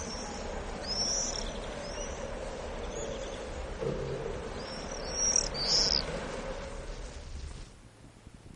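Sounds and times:
common swifts screaming: 0.0s - 7.2s
low rumbling noise: 0.0s - 8.5s.

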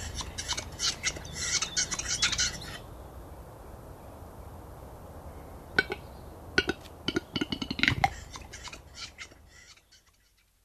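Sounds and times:
Western capercaillie busy chattering: 0.0s - 2.8s, 6.6s - 10.4s.

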